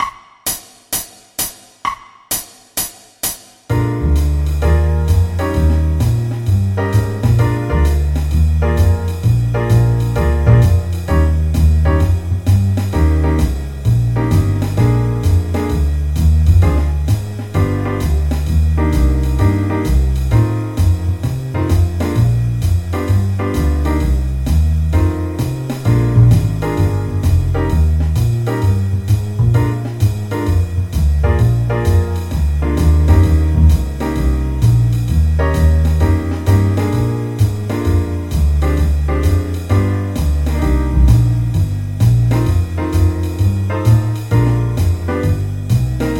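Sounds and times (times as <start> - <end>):
improvised music: 3.7 - 46.1.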